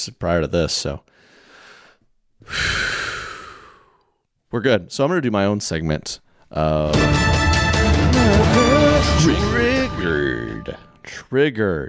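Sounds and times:
speech: 0:00.0 - 0:01.2, 0:02.4 - 0:03.0, 0:04.5 - 0:07.4, 0:08.2 - 0:11.8
person breathing heavily after talking: 0:01.1 - 0:04.2.

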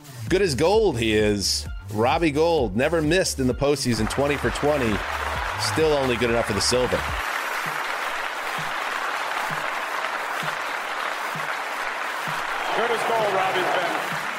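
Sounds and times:
speech: 0:00.3 - 0:07.3
crowd applauding: 0:03.9 - 0:14.3.

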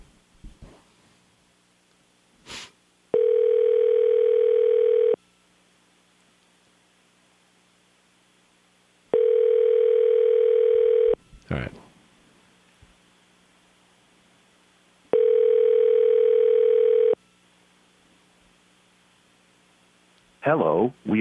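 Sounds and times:
outgoing telephone call electronic ringback tone: 0:03.1 - 0:05.2, 0:09.1 - 0:11.2, 0:15.1 - 0:17.2
speech: 0:20.5 - 0:21.1.

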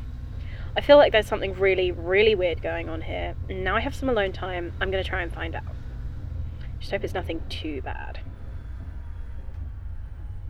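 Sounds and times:
faint high whine in a moving train car: 0:00.0 - 0:10.4
moving train car rumbling over rails: 0:00.0 - 0:10.4
speech: 0:00.8 - 0:05.8, 0:06.8 - 0:08.3.

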